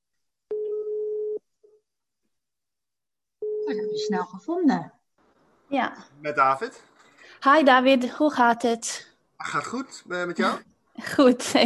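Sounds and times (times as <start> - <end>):
telephone line tone while calling someone: 0.5 - 1.4
speech: 4.0 - 5.0, 5.7 - 11.6.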